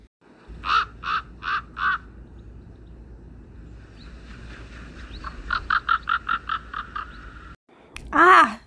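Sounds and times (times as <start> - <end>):
low steady outdoor rumble: 0.0 - 7.6
raven croaking: 0.5 - 2.2, 5.2 - 7.5.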